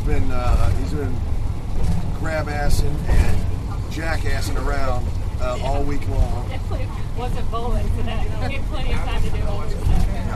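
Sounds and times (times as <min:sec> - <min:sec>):
steady low engine rumble inside a moving bus: 0:00.0 - 0:10.3
speech: 0:00.1 - 0:10.3.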